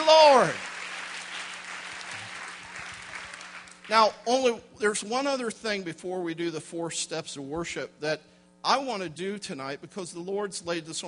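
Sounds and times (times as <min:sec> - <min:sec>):
church congregation applauding with hand claps of praise during a worship service: 0:00.0 - 0:04.1
speech: 0:00.1 - 0:00.7, 0:03.9 - 0:11.0.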